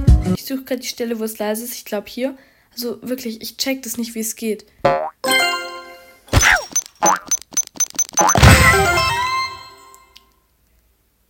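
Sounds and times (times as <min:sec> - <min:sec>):
speech: 0:00.3 - 0:05.3
cartoon boings and thuds from a red ball bouncing in a platform video game: 0:04.9 - 0:05.2, 0:06.3 - 0:09.3
bright tonal video game blips: 0:06.4 - 0:09.3.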